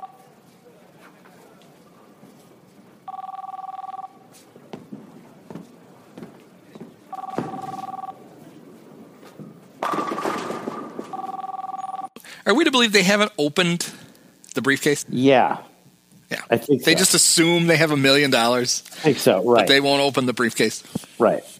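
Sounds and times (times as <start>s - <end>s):
telephone ringing: 0.0s - 0.3s, 3.0s - 4.3s, 7.1s - 8.3s, 9.8s - 12.2s
speech: 12.5s - 14.0s, 14.6s - 15.7s, 16.5s - 21.5s.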